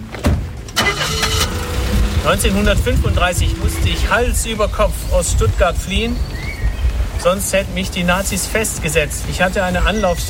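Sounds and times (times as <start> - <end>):
old Mercedes car engine cranking and starting: 0.5 - 5.1
speech: 2.2 - 6.4, 7.2 - 10.2.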